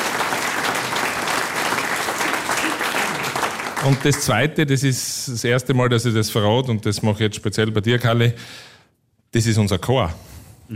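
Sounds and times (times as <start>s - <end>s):
crowd clapping: 0.0s - 4.5s
speech: 3.8s - 8.7s, 9.3s - 10.7s.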